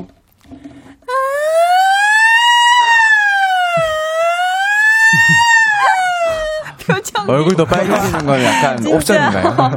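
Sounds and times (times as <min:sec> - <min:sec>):
person imitating a siren with their voice: 0:01.1 - 0:06.8
laughter: 0:03.6 - 0:09.7
speech: 0:07.3 - 0:09.7.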